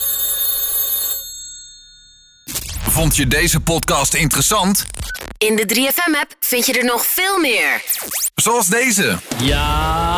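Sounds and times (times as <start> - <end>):
telephone bell ringing with a bright metallic trill: 0.0 - 2.5
speech: 3.0 - 10.1.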